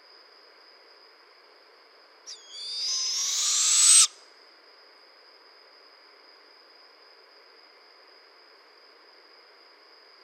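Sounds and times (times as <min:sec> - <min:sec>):
barred owl giving a harsh hissing screech: 0:02.3 - 0:04.2.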